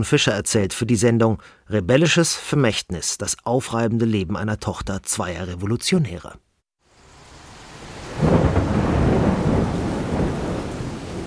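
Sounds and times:
speech: 0:00.0 - 0:06.5
heavy pouring rain with a deep rumbling low end: 0:06.8 - 0:11.2.

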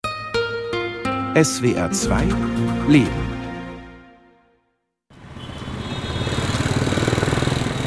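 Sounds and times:
musical tone: 0:00.4 - 0:04.8
speech: 0:01.4 - 0:03.4
busy dense city traffic in Mumbai: 0:05.1 - 0:07.8
rattling buzz of auto-rickshaw engines: 0:05.1 - 0:07.8.

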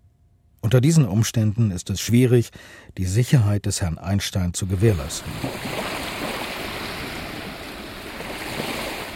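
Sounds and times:
speech: 0:00.7 - 0:05.8
ocean waves on a shore: 0:04.8 - 0:09.1.

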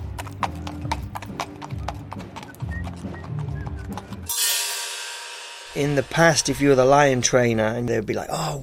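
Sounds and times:
horses' hooves clip-clopping as horses are led on circus grounds: 0:00.0 - 0:04.3
low droning music: 0:00.0 - 0:08.5
speech: 0:05.8 - 0:08.6.

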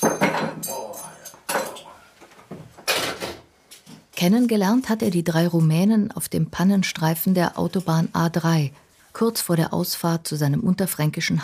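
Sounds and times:
plates being set down: 0:00.0 - 0:00.7, 0:01.4 - 0:03.5
dishes and cutlery clattering while washed and sorted into rack: 0:00.0 - 0:02.0, 0:02.8 - 0:03.4
speech: 0:04.2 - 0:11.4.

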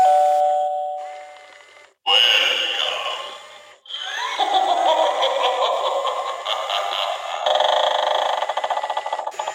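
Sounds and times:
bright chime tone of spooky novelty doorbell: 0:00.0 - 0:01.4
cackling effects of spooky novelty doorbell: 0:02.1 - 0:09.4.

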